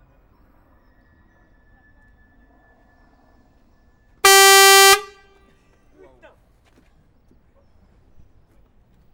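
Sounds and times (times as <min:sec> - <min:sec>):
bus horn: 0:04.2 - 0:05.4.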